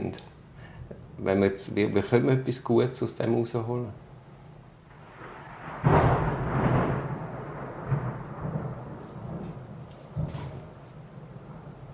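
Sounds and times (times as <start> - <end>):
speech: 0.0 - 0.4, 1.2 - 4.0
thunder cracking and rumbling during a thunderstorm: 4.9 - 11.9.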